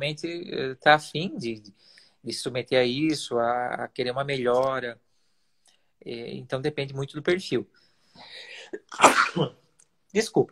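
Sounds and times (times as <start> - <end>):
speech: 0.0 - 5.0, 6.0 - 10.5
person sneezing: 8.6 - 9.6.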